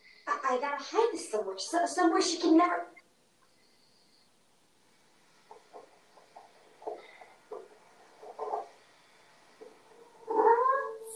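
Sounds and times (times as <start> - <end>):
speech: 0.5 - 3.0
cat mewing chirps: 10.2 - 11.1.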